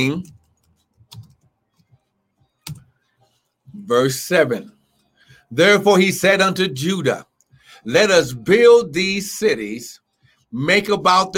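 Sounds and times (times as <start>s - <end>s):
speech: 0.0s - 0.4s, 3.8s - 4.8s, 5.5s - 11.3s
typing on a computer keyboard: 0.1s - 2.0s.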